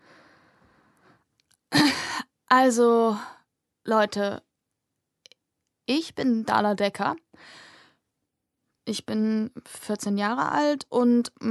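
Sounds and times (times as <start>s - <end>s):
woman clearing her throat: 1.8s - 2.1s
speech: 2.5s - 4.4s, 5.9s - 7.6s, 8.9s - 11.4s.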